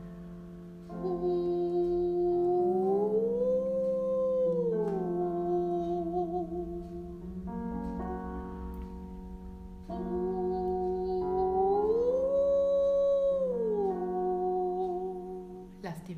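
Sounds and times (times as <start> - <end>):
sustained singing voice sliding in smooth glissando: 1.0 - 7.8, 9.9 - 15.7.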